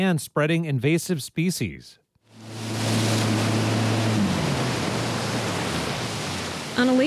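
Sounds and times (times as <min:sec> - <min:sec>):
speech: 0:00.0 - 0:02.0, 0:06.8 - 0:07.0
churning lake water rushing from boat wake: 0:02.3 - 0:07.0
wake surfing boat engine droning on a lake: 0:02.3 - 0:07.0.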